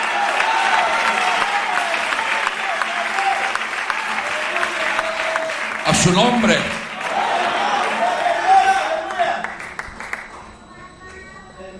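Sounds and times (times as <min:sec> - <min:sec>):
church audience applauding during a sermon: 0:00.0 - 0:10.5
speech: 0:05.9 - 0:06.8
faint murmur of voices: 0:08.0 - 0:11.7.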